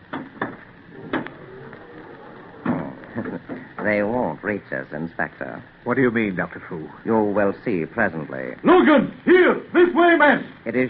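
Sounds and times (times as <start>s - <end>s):
glass doors sliding closed: 0.9s - 3.0s
speech: 3.2s - 10.8s.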